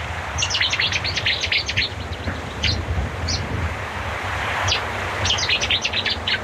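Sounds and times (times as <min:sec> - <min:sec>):
Cetti's warbler song: 0:00.0 - 0:06.4
steady wind rumble outdoors: 0:00.0 - 0:06.4
softer Cetti's warbler calls: 0:00.3 - 0:03.5, 0:04.6 - 0:06.4.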